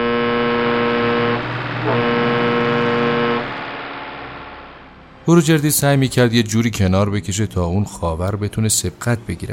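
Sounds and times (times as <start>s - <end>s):
loud deep truck horn blasts: 0.0s - 4.2s
speech: 5.3s - 9.5s.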